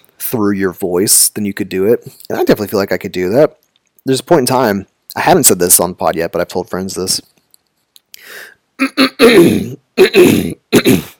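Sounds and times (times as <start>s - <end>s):
speech: 0.3s - 7.4s, 8.3s - 11.1s
person clearing throat in rough voiced rasps: 8.8s - 11.1s.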